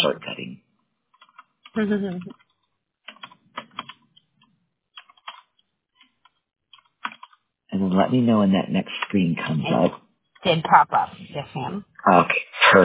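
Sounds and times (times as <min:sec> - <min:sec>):
low voice-like sound: 0:00.0 - 0:00.6, 0:07.8 - 0:09.9, 0:10.7 - 0:12.8
speech: 0:00.1 - 0:00.4, 0:01.8 - 0:02.4, 0:08.0 - 0:12.8
typing on a computer keyboard: 0:01.2 - 0:01.6, 0:02.3 - 0:04.3, 0:05.0 - 0:07.4.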